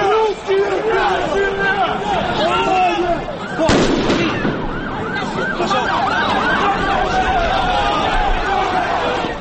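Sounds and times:
shouting crowds of young fans in street clashes: 0:00.0 - 0:09.3
firecrackers and smoke bombs exploding during street clashes: 0:03.7 - 0:04.7.

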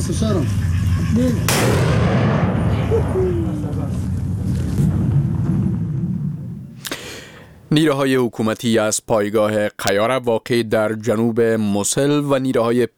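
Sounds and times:
speech: 0:00.0 - 0:02.3, 0:02.9 - 0:04.0, 0:07.7 - 0:12.9
sharp artillery blast: 0:01.4 - 0:07.7
artillery fire during a military offensive near Mosul, Iraq: 0:01.5 - 0:06.8.

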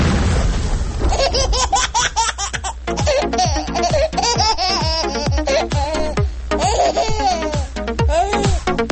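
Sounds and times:
dense explosion effect with constant deep rumble: 0:00.0 - 0:01.8
bright warbling laugh-like cries: 0:01.0 - 0:08.8.

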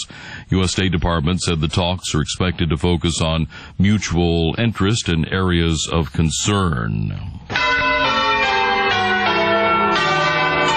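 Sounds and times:
speech: 0:00.5 - 0:07.9
church bells tolling: 0:07.5 - 0:10.7.

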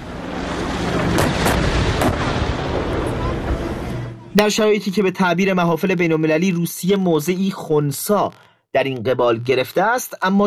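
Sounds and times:
continuous roar of noise: 0:00.0 - 0:04.4
heavy artillery fire booming: 0:00.0 - 0:04.4
speech: 0:04.4 - 0:10.4.

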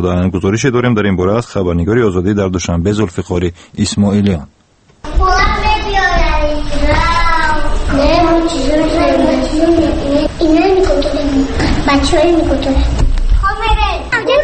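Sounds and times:
speech: 0:00.0 - 0:04.6, 0:08.0 - 0:13.0
children chattering and calling out at play: 0:05.1 - 0:14.4.

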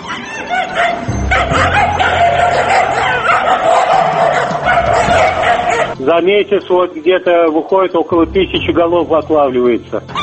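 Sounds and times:
stray dogs barking in Tashkent during a roundup: 0:00.0 - 0:06.0
speech: 0:06.1 - 0:10.2.

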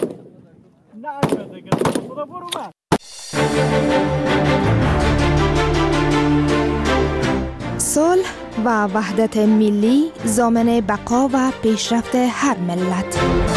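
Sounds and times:
gunshots cracking at a shooting range: 0:00.0 - 0:02.2
speech: 0:01.0 - 0:02.8, 0:08.0 - 0:13.5
loud dense burst of music: 0:03.0 - 0:07.6.

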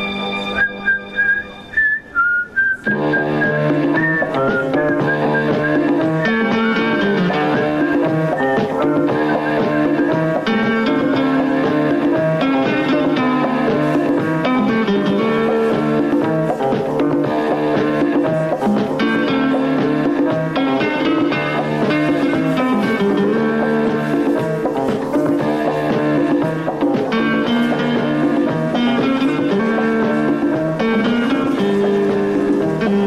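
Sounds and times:
whistled melody: 0:00.0 - 0:13.0
instrumental opening theme music of a TV series: 0:00.0 - 0:33.0.

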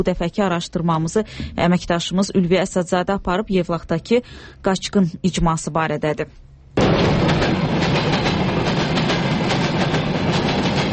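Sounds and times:
speech: 0:00.0 - 0:08.0
faint rhythmic clatter of train wheels: 0:06.8 - 0:10.9
train running along the railway heading west from Baku: 0:06.8 - 0:10.9.

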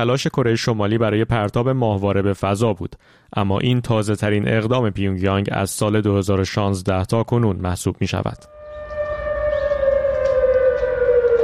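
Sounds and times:
speech: 0:00.0 - 0:08.6
civil defense warning siren wailing: 0:08.5 - 0:11.4.

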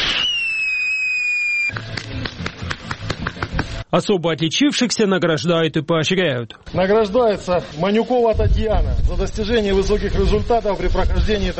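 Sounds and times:
high whistling tone sliding downward: 0:00.0 - 0:01.8
speech: 0:01.7 - 0:02.6, 0:03.9 - 0:11.5.

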